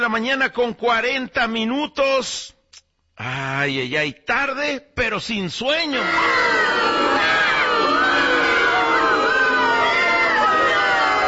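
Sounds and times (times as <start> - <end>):
speech: 0.0 - 2.6, 3.2 - 7.4
large crowd booing and jeering: 5.9 - 11.2.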